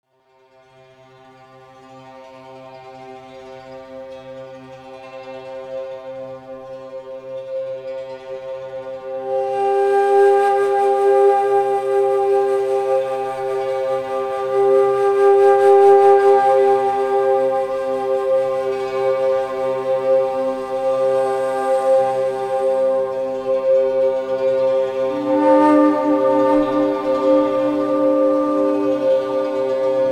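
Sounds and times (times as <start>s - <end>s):
528 Hz meditation tone: 9.1s - 30.0s.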